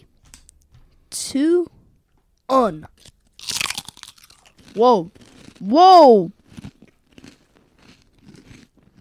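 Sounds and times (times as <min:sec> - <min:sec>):
speech: 0:01.1 - 0:01.8, 0:02.5 - 0:03.1, 0:04.8 - 0:06.4
turkey-stuffing-flavored wavy potato chip bitten and chewed: 0:02.9 - 0:09.0.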